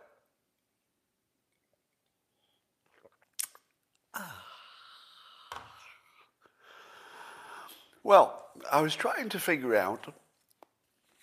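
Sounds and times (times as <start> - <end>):
person sipping coffee from a cup: 1.6 - 6.4
speech: 4.2 - 4.4, 8.0 - 10.2.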